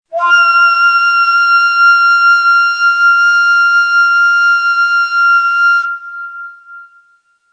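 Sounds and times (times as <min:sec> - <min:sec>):
ney flute sample in Tiz Beyati mode: 0:00.1 - 0:07.5.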